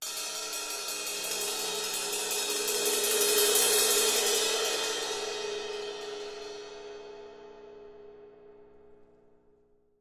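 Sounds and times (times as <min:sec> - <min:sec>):
cymbal crescendo: 0:00.0 - 0:07.8.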